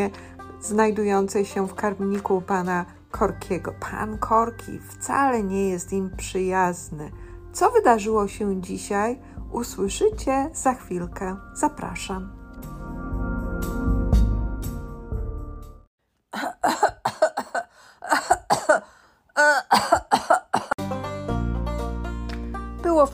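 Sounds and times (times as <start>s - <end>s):
speech: 0.0s - 12.4s
soft music: 0.0s - 15.9s, 20.6s - 23.1s
loud harsh coughing fits: 16.4s - 20.8s.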